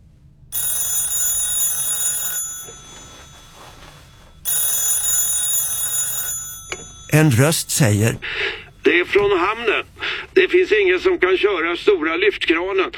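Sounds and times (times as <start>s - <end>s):
telephone bell ringing: 0.5s - 8.5s
speech: 7.1s - 12.9s.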